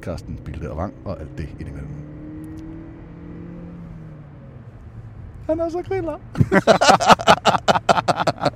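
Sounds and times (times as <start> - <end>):
speech: 0.0 - 2.2, 5.5 - 8.0
car engine revving onto the motorway: 0.0 - 8.5
laughter: 6.4 - 8.5.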